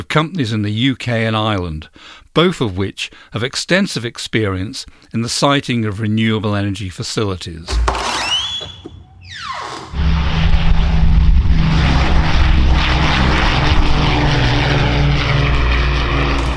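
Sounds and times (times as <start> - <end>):
speech: 0.0 - 8.0
World War II Lancaster bomber taking off: 8.0 - 16.5.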